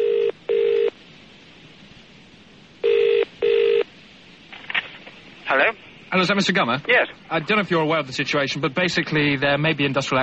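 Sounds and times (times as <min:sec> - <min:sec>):
telephone ringing tone heard down the line: 0:00.0 - 0:01.0, 0:02.8 - 0:03.9
faint hiss: 0:00.0 - 0:10.2
speech: 0:06.2 - 0:10.2.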